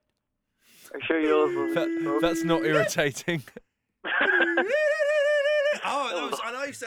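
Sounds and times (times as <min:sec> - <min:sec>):
laughter: 0:01.3 - 0:04.9, 0:05.5 - 0:06.7
voice imitating a computer game loading from cassette: 0:01.5 - 0:03.5
speech: 0:01.5 - 0:03.7, 0:04.5 - 0:04.9, 0:05.8 - 0:06.8.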